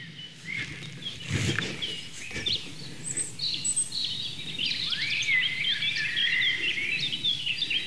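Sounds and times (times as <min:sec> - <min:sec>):
Eurasian blackcap singing fast bright fluting phrases: 0:00.0 - 0:07.8
rustling: 0:00.4 - 0:03.3.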